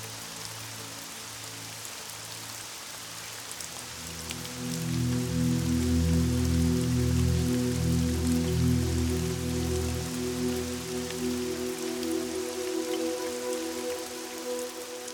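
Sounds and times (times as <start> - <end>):
steady gentle rain pattering with droplet taps: 0.0 - 15.1
low sustained musical drone: 3.9 - 15.1.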